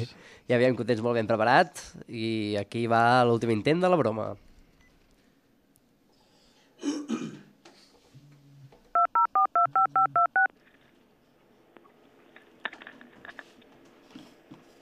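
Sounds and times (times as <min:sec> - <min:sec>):
speech: 0:00.0 - 0:04.4
person clearing throat: 0:06.8 - 0:07.6
phone keypad beeps as a number is dialed: 0:09.0 - 0:10.5.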